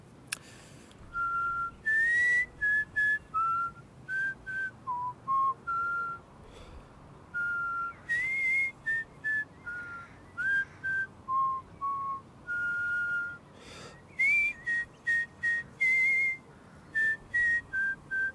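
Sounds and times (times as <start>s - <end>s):
person whistling a bouncy children's song melody: 1.1s - 6.2s, 7.4s - 13.4s, 14.1s - 16.4s, 17.0s - 18.3s.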